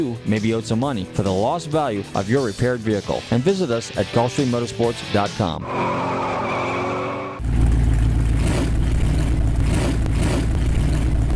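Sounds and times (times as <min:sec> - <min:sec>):
speech: 0:00.0 - 0:06.2
car engine revving: 0:05.6 - 0:11.3.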